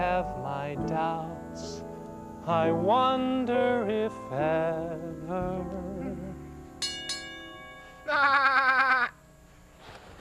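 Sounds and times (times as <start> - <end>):
speech: 0.2 - 1.7, 2.4 - 6.3, 8.1 - 9.1
goat bleating: 8.1 - 9.2.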